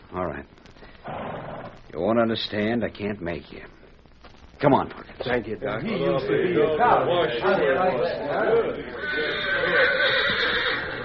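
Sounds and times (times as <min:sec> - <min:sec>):
speech: 0:00.1 - 0:01.2, 0:02.0 - 0:03.8, 0:04.6 - 0:10.3
horse whinnying: 0:08.9 - 0:11.0.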